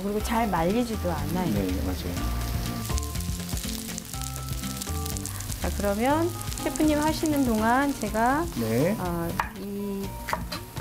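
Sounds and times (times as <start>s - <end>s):
speech: 0.0s - 2.5s, 5.6s - 9.5s
eggplant sizzling over heat to soften it: 0.0s - 10.8s.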